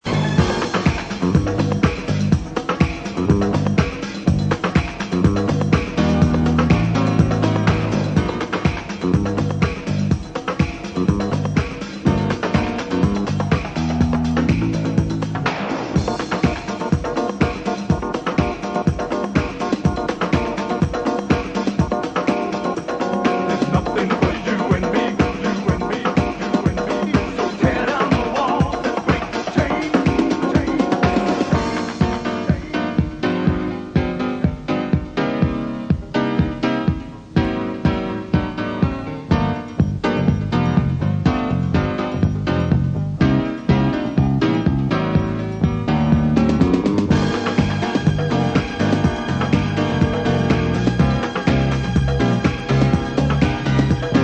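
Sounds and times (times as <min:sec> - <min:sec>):
rhumba piano: 0:00.0 - 0:54.2
man singing: 0:23.5 - 0:33.2.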